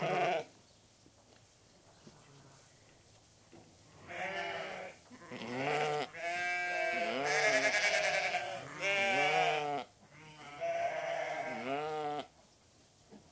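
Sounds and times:
restless sheep bleating in shed: 0.0s - 0.5s, 4.0s - 12.3s.

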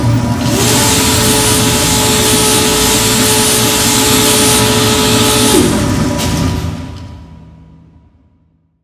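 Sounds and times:
machine motor whine: 0.2s - 6.8s.

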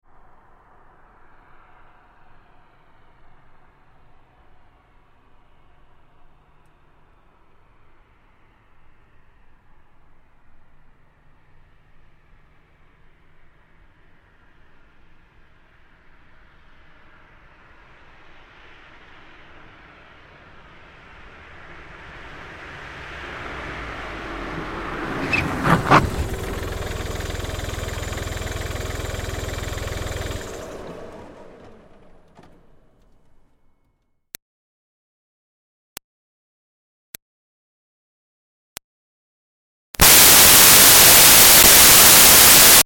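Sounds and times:
2005 Smart Fortwo car pulling up and stopping fast: 0.2s - 33.8s, 40.0s - 42.8s.

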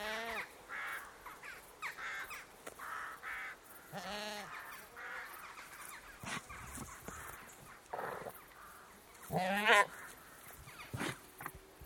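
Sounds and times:
crickets in early evening: 0.0s - 11.8s
British Saanen goat annoyed bleating in a field: 3.9s - 4.6s, 9.3s - 10.0s.

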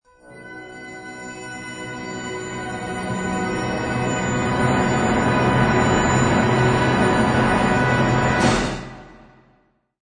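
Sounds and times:
orchestral finale: 0.3s - 9.4s.

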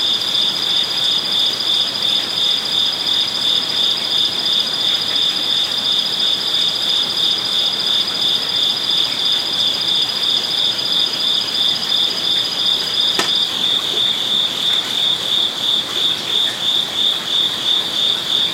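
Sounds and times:
crickets trilling at night in a zen garden beside a koi pond in Kyoto, Japan: 0.0s - 18.5s
sharp click: 13.2s - 13.4s.

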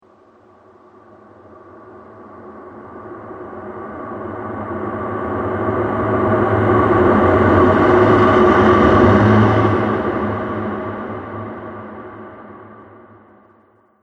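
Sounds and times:
horror music: 3.2s - 12.7s.

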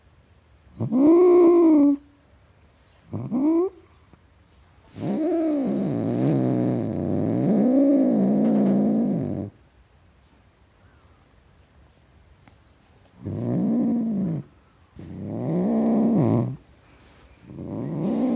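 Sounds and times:
domestic tom cat growling and yowling: 0.8s - 2.0s, 4.9s - 9.6s, 13.2s - 16.6s, 17.5s - 18.3s.

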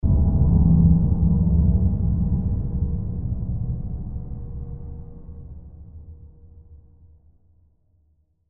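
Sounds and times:
deep dark horror hit: 0.0s - 6.4s.

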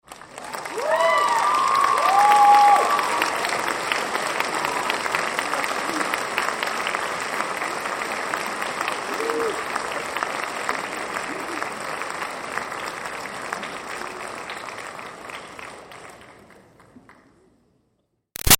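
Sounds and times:
crowd applause at a graduation in an auditorium: 0.0s - 16.6s
audience cheering at a graduation: 0.4s - 5.1s.

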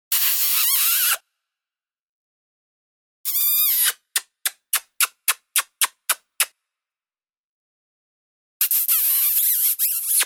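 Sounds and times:
human kissing: 0.1s - 1.2s, 3.3s - 6.6s, 8.6s - 10.2s.

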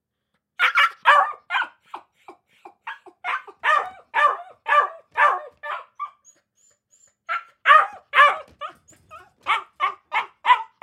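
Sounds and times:
Akita puppy barking inside a kennel cage: 0.6s - 2.0s, 2.8s - 6.2s, 7.3s - 10.8s.

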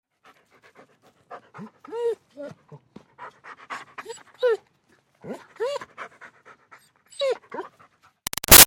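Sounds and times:
German Shepherd dog panting rapidly: 0.1s - 8.2s
German Shepherd dog whining: 1.9s - 2.6s, 4.0s - 4.6s, 7.1s - 7.7s.

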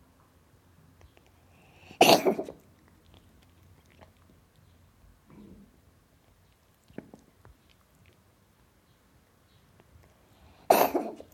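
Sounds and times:
cat coughing: 2.0s - 2.6s, 10.7s - 11.3s.

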